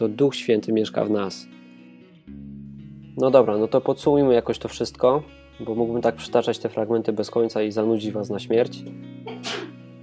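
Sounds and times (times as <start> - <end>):
speech: 0.0 - 1.6, 3.2 - 9.2
sneeze: 9.3 - 9.8.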